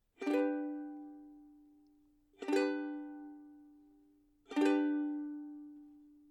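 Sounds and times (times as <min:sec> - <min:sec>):
ukulele G chord: 0:00.2 - 0:01.3, 0:02.4 - 0:03.6, 0:04.5 - 0:05.7.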